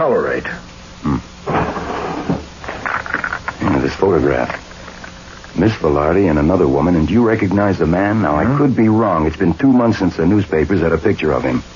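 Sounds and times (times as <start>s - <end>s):
speech: 0.0s - 1.3s, 4.0s - 4.6s, 5.6s - 11.7s
desk drawer sliding and knocking: 1.5s - 2.5s
desk drawer pulled open with a rumbling wooden scrape: 1.5s - 3.0s.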